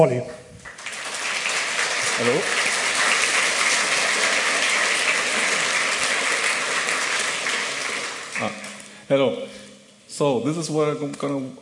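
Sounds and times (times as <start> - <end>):
speech: 0.0 - 0.4, 2.2 - 2.6, 8.4 - 9.5, 10.2 - 11.6
audience applause: 0.6 - 8.9.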